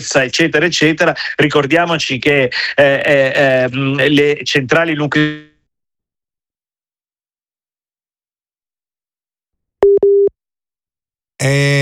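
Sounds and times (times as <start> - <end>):
speech: 0.0 - 5.5, 11.4 - 11.7
telephone busy tone after call dropped: 9.8 - 10.3.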